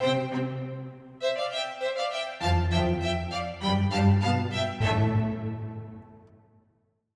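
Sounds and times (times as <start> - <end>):
light staccato cello transition: 0.0 - 1.1, 2.4 - 6.4.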